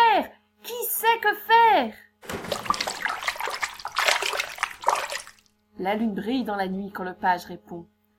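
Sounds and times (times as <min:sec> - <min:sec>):
speech: 0:01.2 - 0:02.0, 0:05.8 - 0:08.0
water gurgling and sloshing as a bathtub is unplugged and drains: 0:02.2 - 0:05.5.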